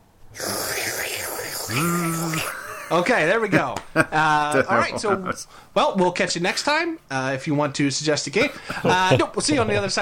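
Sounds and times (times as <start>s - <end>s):
voice imitating a vacuum cleaner with breathy roar and hummed whine: 0.4s - 2.5s
speech: 1.7s - 10.0s
laughter: 1.9s - 5.5s, 8.4s - 10.0s.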